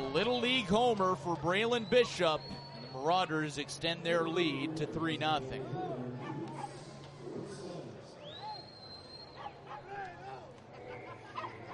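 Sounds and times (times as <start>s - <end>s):
murmur of a large outdoor crowd: 0.0s - 11.7s
speech: 0.1s - 5.9s
several dogs barking and yipping in a ballpark crowd: 9.4s - 9.9s, 10.8s - 11.7s.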